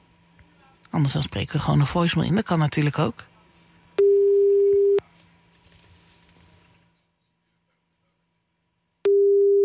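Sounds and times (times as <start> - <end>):
speech: 0.9 - 3.3
ringback tone from an outgoing phone call: 4.0 - 5.0, 9.1 - 9.6.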